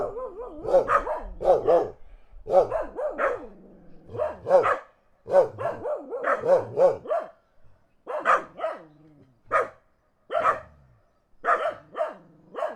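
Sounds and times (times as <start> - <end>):
dogs barking in the countryside: 0.0 - 7.4, 8.1 - 8.9, 9.5 - 10.8, 11.4 - 12.7.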